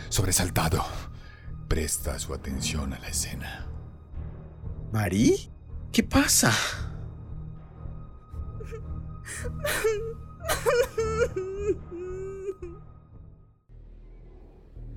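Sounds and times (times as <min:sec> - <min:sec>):
speech: 0:00.2 - 0:01.1, 0:01.7 - 0:03.7, 0:04.9 - 0:06.8, 0:08.7 - 0:12.1
woman crying inconsolably: 0:08.6 - 0:12.9.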